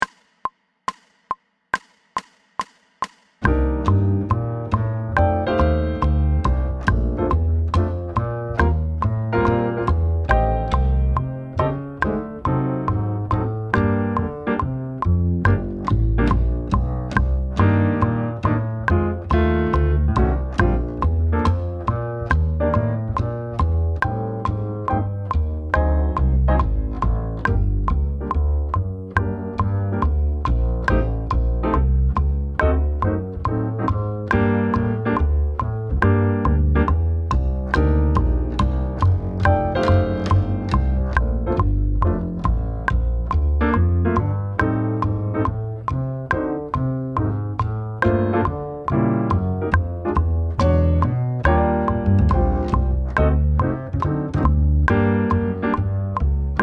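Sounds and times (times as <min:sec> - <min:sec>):
prepared jazz drum set: 0:00.0 - 0:56.6.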